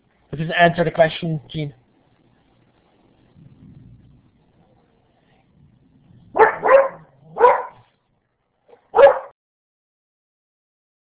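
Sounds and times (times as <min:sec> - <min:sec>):
speech: 0:00.4 - 0:01.8
dog barking while being chased out: 0:06.3 - 0:07.9, 0:08.7 - 0:09.4.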